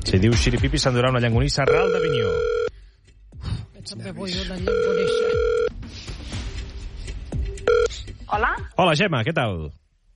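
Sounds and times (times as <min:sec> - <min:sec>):
speech: 0:00.1 - 0:02.7, 0:03.8 - 0:05.6, 0:08.3 - 0:09.8
telephone ringing tone while a call is being placed: 0:01.6 - 0:02.7, 0:04.6 - 0:05.7, 0:07.7 - 0:07.9.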